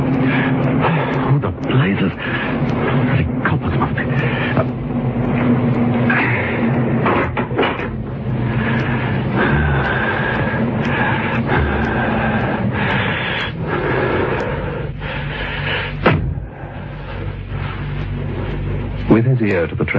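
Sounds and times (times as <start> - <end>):
car engine rumbling while pulling into a garage: 0.0 - 19.9
speech: 1.5 - 4.8
knocks and clatters of a car settling in a garage: 2.6 - 8.4.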